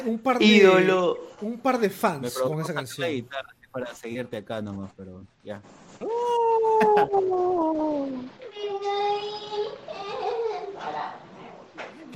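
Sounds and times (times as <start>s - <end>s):
speech: 0.0s - 10.0s
person mockingly wailing like a baby: 6.0s - 8.3s
laughter: 6.1s - 8.2s.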